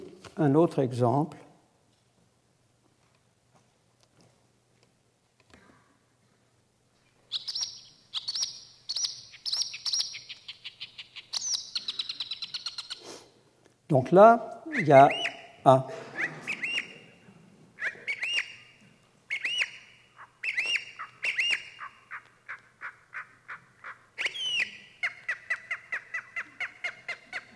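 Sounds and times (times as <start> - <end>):
speech: 0.4 - 1.4, 14.0 - 16.0
slowed-down marsh warbler song: 7.3 - 13.0, 14.7 - 17.2, 17.8 - 27.5.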